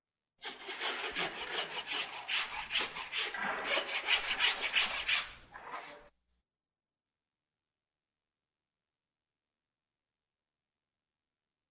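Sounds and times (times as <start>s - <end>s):
horse hoof being filed: 0.4s - 6.0s.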